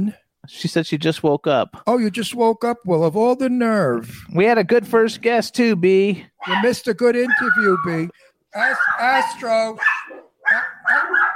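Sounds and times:
speech: 0:00.0 - 0:09.9
dog barking at a passing cyclist: 0:06.4 - 0:11.3.

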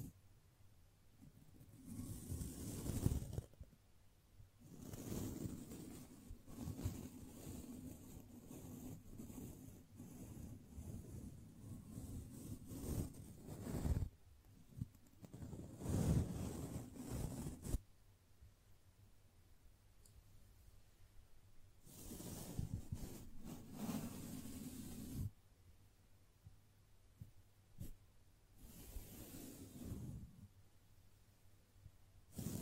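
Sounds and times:
soft brushing strokes rubbing against the microphone: 0:01.6 - 0:03.5, 0:04.6 - 0:14.1, 0:15.2 - 0:17.8, 0:21.8 - 0:25.4, 0:28.6 - 0:30.5, 0:32.3 - 0:32.6.

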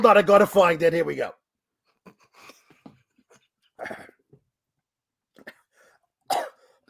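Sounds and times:
speech: 0:00.0 - 0:01.4
person coughing after swallowing food whole: 0:03.8 - 0:04.3, 0:06.3 - 0:06.8.

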